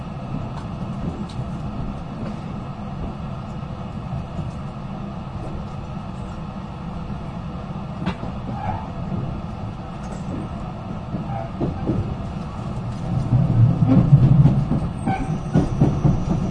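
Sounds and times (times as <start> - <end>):
limited express train rumbling on rails heard from inside the carriage: 0.0 - 16.4
train wheels clickety-clack over track joints: 0.3 - 4.8, 8.0 - 16.4.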